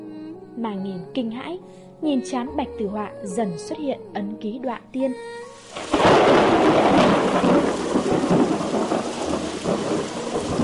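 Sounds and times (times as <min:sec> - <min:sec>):
speech: 0:00.6 - 0:08.1
heavy rain pouring in a thunderstorm: 0:05.6 - 0:10.6
rumbling thunder: 0:05.7 - 0:10.6.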